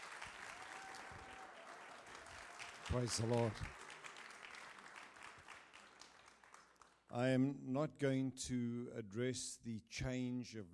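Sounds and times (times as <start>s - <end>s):
audience applause welcoming a speaker: 0.0s - 7.0s
speech: 2.9s - 3.8s, 7.1s - 10.7s.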